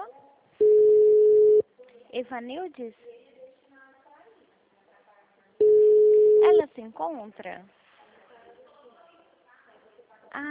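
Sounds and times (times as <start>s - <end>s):
telephone busy signal: 0.6s - 1.6s, 5.6s - 6.6s
speech: 2.2s - 3.2s, 6.4s - 7.8s.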